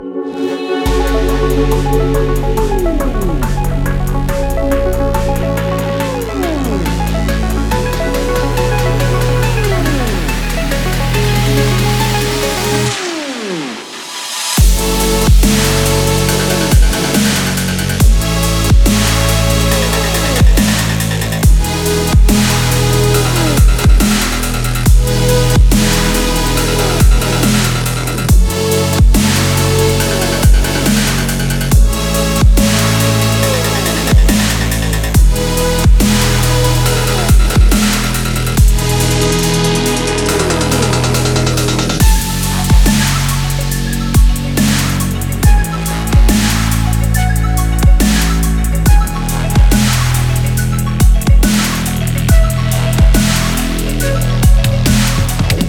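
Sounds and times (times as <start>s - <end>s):
extreme sports dubstep music: 0.0s - 55.6s.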